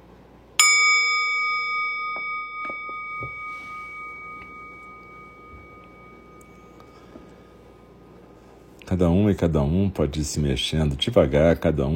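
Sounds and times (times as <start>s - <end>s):
meditation bell ringing: 0.6s - 8.0s
speech: 8.9s - 11.9s.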